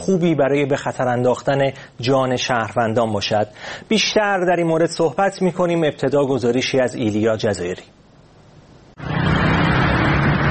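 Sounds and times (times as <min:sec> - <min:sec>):
speech: 0:00.1 - 0:08.0
Sunday street traffic roar in Tehran: 0:09.0 - 0:10.4.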